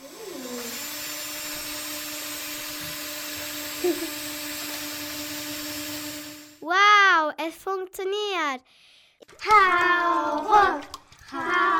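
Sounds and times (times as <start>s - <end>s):
drill whirring with a constant motor whine: 0.0s - 6.6s
speech: 3.8s - 4.3s, 6.7s - 11.7s.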